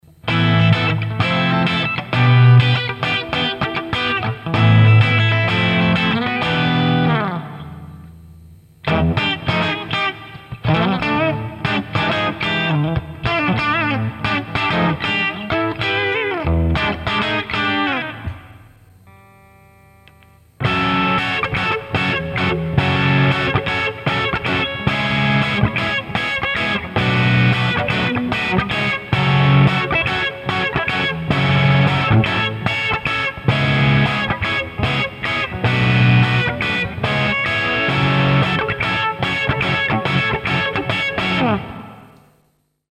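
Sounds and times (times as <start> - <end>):
clean guitar chords at maximum gain: 0.0 - 42.8.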